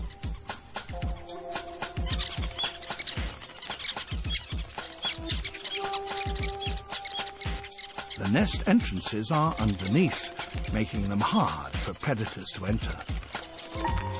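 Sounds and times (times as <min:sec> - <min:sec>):
weaver bird flock wing flutters: 0:00.0 - 0:14.1
weaver birds chattering: 0:00.0 - 0:14.1
speech: 0:08.3 - 0:13.2.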